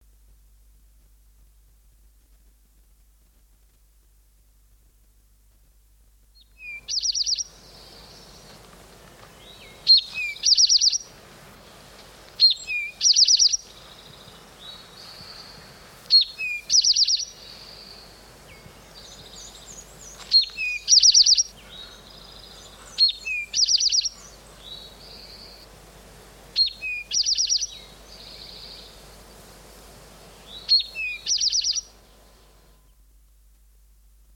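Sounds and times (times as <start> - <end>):
eastern towhee songbird singing: 6.3 - 25.8, 26.5 - 29.5, 30.2 - 33.1.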